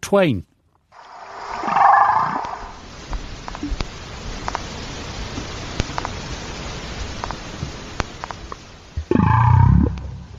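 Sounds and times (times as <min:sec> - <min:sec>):
speech: 0:00.1 - 0:00.5
crackling underwater hiss: 0:00.9 - 0:10.3
faint clicks: 0:02.3 - 0:04.7, 0:07.2 - 0:08.7
humpback whale moans and calls: 0:09.1 - 0:10.3.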